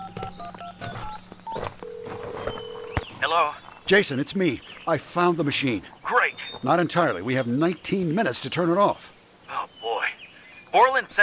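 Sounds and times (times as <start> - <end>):
cell phone keypad tones dialing a call: 0.0 - 3.0
speech: 3.3 - 9.2, 10.7 - 11.2.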